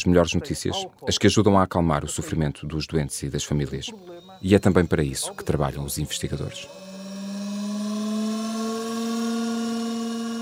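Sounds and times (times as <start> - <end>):
speech: 0.0 - 6.9
centrifuge rotor spinning at high speed: 3.8 - 10.4.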